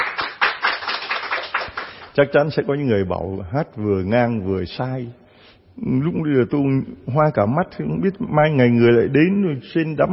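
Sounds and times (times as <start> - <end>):
people clapping after a song: 0.0 - 2.2
speech: 2.2 - 5.2, 5.8 - 10.1.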